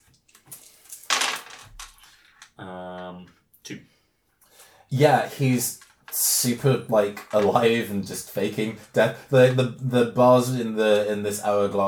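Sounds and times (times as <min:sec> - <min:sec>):
dice clattering and tumbling across a hard surface: 0:00.4 - 0:02.5
speech: 0:03.7 - 0:03.9, 0:04.9 - 0:11.8.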